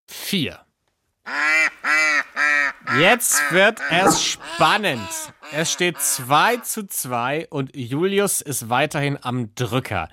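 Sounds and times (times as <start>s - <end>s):
speech: 0.3s - 0.6s, 2.9s - 10.1s
duck quacking: 1.3s - 6.6s.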